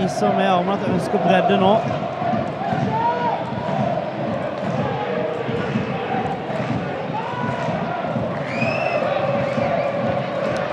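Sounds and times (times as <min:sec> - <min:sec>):
speech: 0:00.0 - 0:02.9
stadium crowd murmur of many voices: 0:00.0 - 0:10.7
whistles in a stadium crowd: 0:08.4 - 0:10.2.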